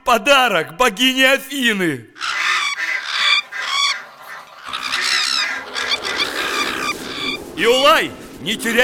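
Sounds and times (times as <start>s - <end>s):
speech: 0.1s - 2.4s, 7.6s - 8.8s
flock of attacking birds screeching: 2.2s - 8.0s.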